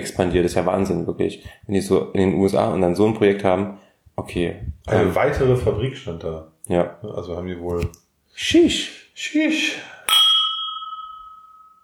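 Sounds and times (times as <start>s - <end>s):
speech: 0.0s - 10.2s
beer glasses clinking in a toast: 10.1s - 11.8s.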